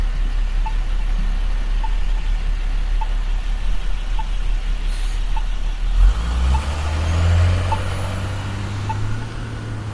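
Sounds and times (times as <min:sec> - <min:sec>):
heavy bus engine rumbling and idling beside the road: 0:00.0 - 0:09.9
bus air-brake hiss: 0:04.9 - 0:05.4.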